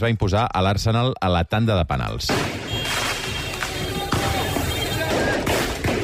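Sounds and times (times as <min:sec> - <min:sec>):
speech: 0:00.0 - 0:02.7
roaring street din during riot: 0:00.0 - 0:06.0
crackling noise: 0:02.0 - 0:06.0
firecrackers thrown by football fans at police during street riot: 0:02.3 - 0:06.0.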